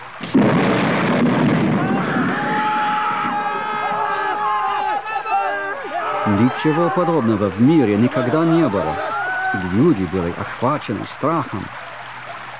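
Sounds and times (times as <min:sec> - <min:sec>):
sudden loud crack of thunder and long heavy rumble: 0:00.2 - 0:03.7
high wavering cries: 0:02.1 - 0:09.9
laughter: 0:03.4 - 0:12.5
speech: 0:06.4 - 0:11.8.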